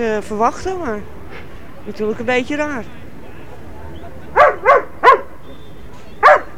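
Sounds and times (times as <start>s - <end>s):
speech: 0.0s - 1.2s, 1.8s - 3.0s
dog barking: 3.5s - 6.5s.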